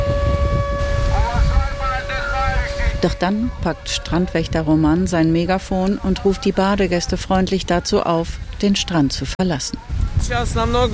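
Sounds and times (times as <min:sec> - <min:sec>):
wailing siren: 0:00.0 - 0:05.4
rushing sea surf roaring: 0:00.0 - 0:10.9
steady wind: 0:00.0 - 0:10.9
speech: 0:03.0 - 0:10.9.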